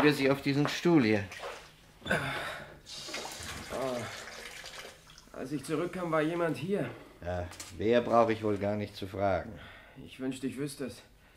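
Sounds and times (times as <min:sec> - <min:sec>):
speech: 0:00.0 - 0:03.0, 0:05.4 - 0:11.1
water running from a tap: 0:02.9 - 0:06.2.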